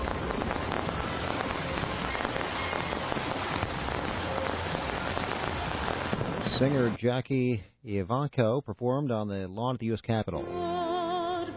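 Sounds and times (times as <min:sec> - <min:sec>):
Fourth of July fireworks crackling: 0:00.0 - 0:07.0
speech: 0:06.6 - 0:10.7.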